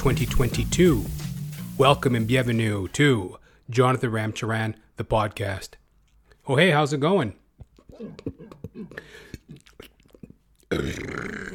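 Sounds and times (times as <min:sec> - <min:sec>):
speech: 0:00.0 - 0:01.2, 0:01.8 - 0:05.8, 0:06.4 - 0:07.4, 0:08.0 - 0:09.4, 0:10.7 - 0:11.5
breaths: 0:03.4 - 0:03.7, 0:08.9 - 0:09.5
loud drawn-out burp: 0:10.7 - 0:11.5.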